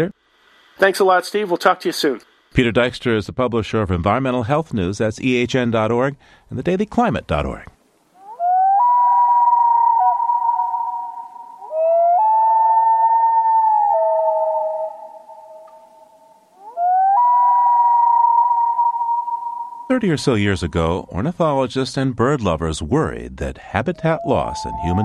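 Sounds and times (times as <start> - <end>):
speech: 0.8 - 7.7, 20.0 - 25.0
common loon wail: 8.2 - 21.1, 23.8 - 25.0.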